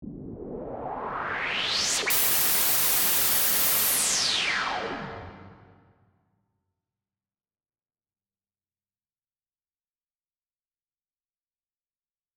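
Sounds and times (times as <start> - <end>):
riser sound effect: 0.0 - 6.0.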